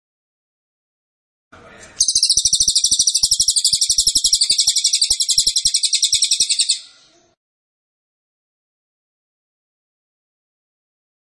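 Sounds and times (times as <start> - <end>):
cililin singing a very fast shrill trill: 2.0 - 7.2.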